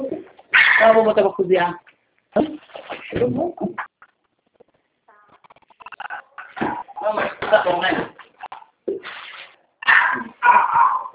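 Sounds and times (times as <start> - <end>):
dog barking short strained barks: 0.5 - 1.0, 9.8 - 11.1
speech: 0.8 - 3.8, 7.0 - 8.1.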